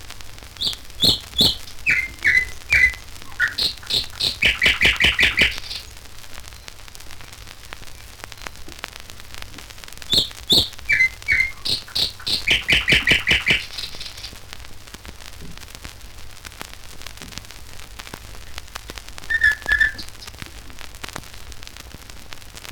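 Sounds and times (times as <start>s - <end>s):
nightingale singing: 0.5s - 6.8s, 10.1s - 14.4s, 19.3s - 20.4s.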